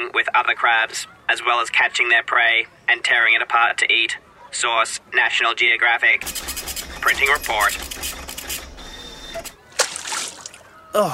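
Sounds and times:
speech: 0.2 - 8.3, 10.9 - 11.1
object splashing into water: 9.7 - 10.6.

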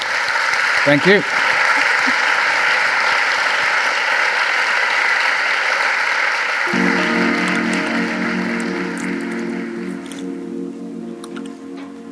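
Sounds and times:
audience applause at the close of a live onstage conversation event: 0.0 - 10.2
speech: 0.8 - 1.4
low musical tone or hum: 6.7 - 12.1.

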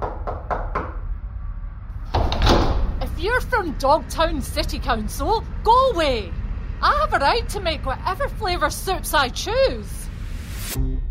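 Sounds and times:
firm knocks on a door: 0.0 - 1.0
low rumble: 0.0 - 11.0
speech: 3.2 - 10.0, 10.7 - 11.0.

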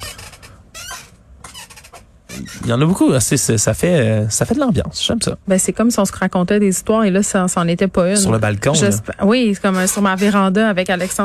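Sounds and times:
wooden rocking chair creaking as a person rocks in it: 0.0 - 3.0, 9.7 - 11.2
speech: 2.4 - 11.2.

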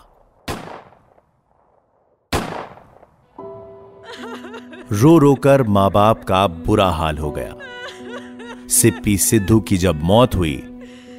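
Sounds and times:
gunshots: 0.0 - 3.2
laughter: 4.0 - 10.2
speech: 4.2 - 7.7, 8.7 - 10.7.

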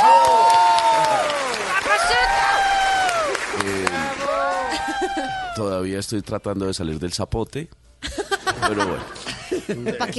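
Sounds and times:
crowd clapping: 0.0 - 5.5
laughter: 4.5 - 5.6, 8.0 - 10.1
speech: 5.6 - 10.1.

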